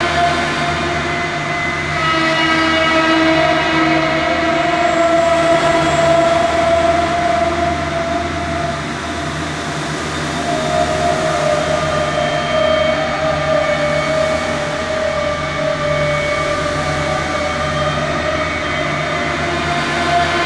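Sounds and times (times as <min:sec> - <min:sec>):
distant factory ambience in a cave: 0:00.0 - 0:20.4.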